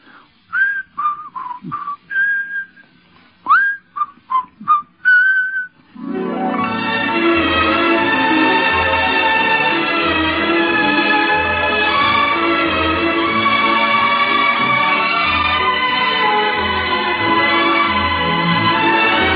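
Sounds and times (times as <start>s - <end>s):
person whistling a show tune from a stage musical: 0.5s - 5.8s
full orchestral passage: 5.9s - 19.3s.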